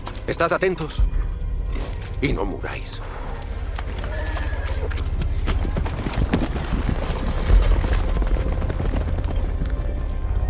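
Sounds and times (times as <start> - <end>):
speech: 0.3 - 1.3, 2.2 - 3.3
horse hooves clip-clopping: 3.8 - 10.4.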